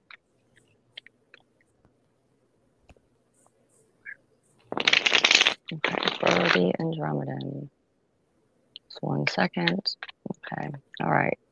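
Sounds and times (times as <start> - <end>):
dense rushing riffle of cards: 4.6 - 6.6
tarot cards being shuffled for a card reading: 4.6 - 6.9
speech: 6.6 - 7.8, 9.1 - 11.4.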